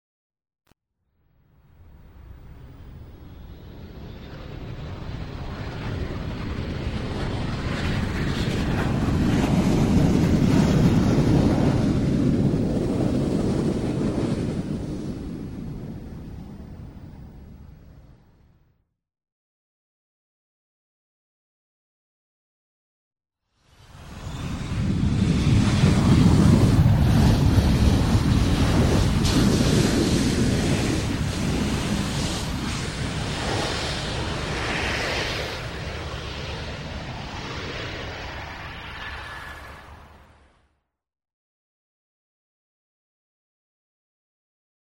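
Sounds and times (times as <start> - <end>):
jet flying by: 1.8 - 17.1, 23.8 - 40.8.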